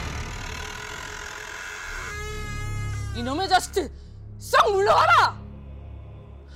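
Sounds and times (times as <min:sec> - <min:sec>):
door rattling with a rough grinding noise: 0:00.0 - 0:02.2
door creaking open with a tonal groan: 0:00.0 - 0:03.6
speech: 0:03.2 - 0:05.4.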